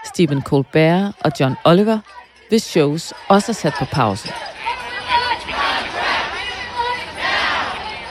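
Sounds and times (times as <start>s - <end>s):
striking writers chanting on a picket line: 0.0s - 8.0s
speech: 0.2s - 4.8s.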